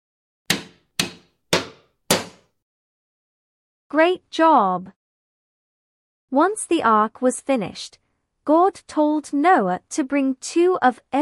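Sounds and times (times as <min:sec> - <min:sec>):
hammer blows: 0:00.5 - 0:02.5
speech: 0:03.9 - 0:05.0, 0:06.3 - 0:11.2.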